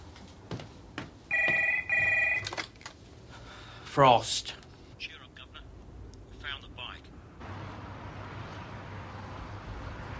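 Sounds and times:
telephone bell ringing: 1.3s - 2.6s
speech: 4.0s - 4.6s.

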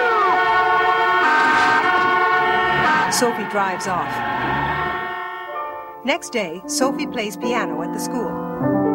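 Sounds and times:
car and truck horns honking impatiently at a stopped driver: 0.0s - 5.9s
speech: 3.2s - 4.8s, 6.0s - 8.8s.

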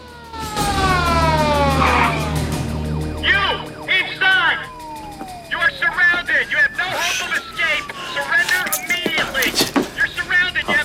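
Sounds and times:
low engine rumble: 0.0s - 8.4s
police car sirens wailing: 0.0s - 10.8s.

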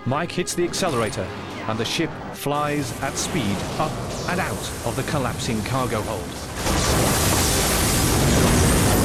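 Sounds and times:
speech: 0.1s - 7.1s
explosions destroying a space liner: 2.9s - 9.0s.

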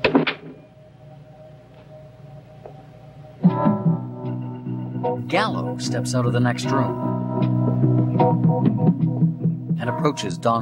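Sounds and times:
door swinging shut with a soft thud: 0.0s - 0.6s
faint music humming: 0.0s - 10.6s
speech: 5.3s - 7.2s, 7.8s - 9.2s, 9.8s - 10.6s.

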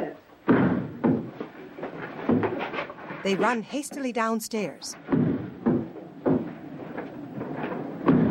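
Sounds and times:
front door swinging knocking and creaking: 0.5s - 2.8s, 5.0s - 8.2s
speech: 3.2s - 5.1s.

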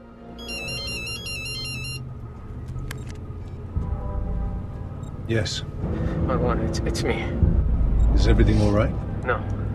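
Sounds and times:
electronic phone ringtone warbling: 0.4s - 2.0s
speech: 5.3s - 9.6s.

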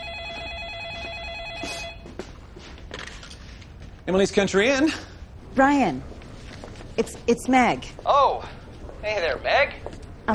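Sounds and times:
telephone ringing with a warbling electronic trill: 0.0s - 2.1s
speech: 4.0s - 6.1s, 7.0s - 10.3s.

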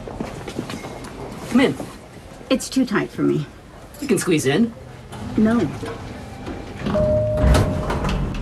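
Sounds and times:
speech: 1.5s - 4.8s, 5.4s - 6.1s
elevator doors sliding open: 5.0s - 8.4s.

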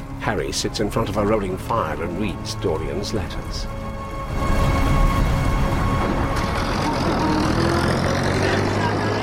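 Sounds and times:
speech: 0.3s - 4.5s
army truck carrying soldiers driving along a street at night: 5.2s - 9.2s.

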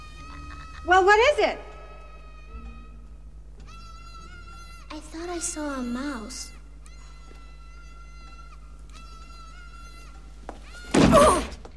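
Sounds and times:
speech: 0.8s - 1.7s, 5.0s - 6.5s
person slamming bodily into a shut door with brief rattling resonance: 10.9s - 11.6s.

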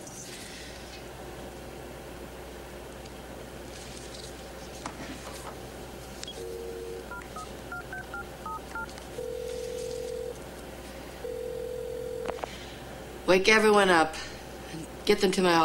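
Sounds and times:
low hum: 0.0s - 15.6s
two-tone telephone keypad beeps: 6.3s - 10.4s
long steady telephone ringback tones: 6.4s - 10.4s, 11.2s - 12.4s
speech: 13.3s - 14.3s, 15.1s - 15.6s.

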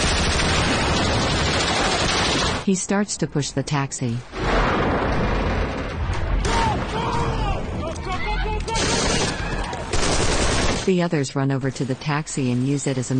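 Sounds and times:
sustained gunfire from several weapons: 0.0s - 2.7s, 4.4s - 11.1s
speech: 2.7s - 4.4s, 10.9s - 13.1s.

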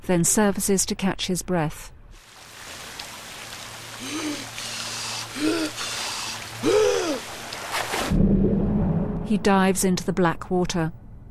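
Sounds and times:
speech: 0.1s - 2.0s, 4.0s - 4.6s, 5.4s - 5.9s, 9.3s - 11.0s
rain pouring down onto a boat deck: 2.2s - 8.0s
warbling tonal calls: 4.0s - 7.3s.

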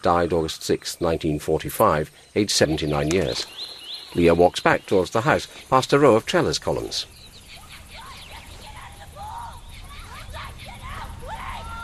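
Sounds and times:
speech: 0.0s - 7.2s
several people screaming and shouting by a pool: 7.6s - 11.8s.

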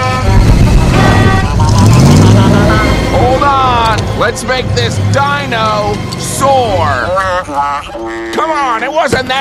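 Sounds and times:
horn-like tone: 0.0s - 4.9s, 6.4s - 8.9s
van engine revving as it accelerates: 0.0s - 9.3s
speech: 4.3s - 9.3s.

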